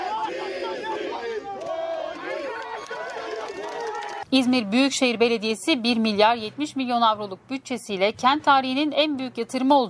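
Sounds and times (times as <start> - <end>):
crowd of protesting tea producers shouting during police intervention: 0.0 - 4.2
speech: 4.3 - 9.8.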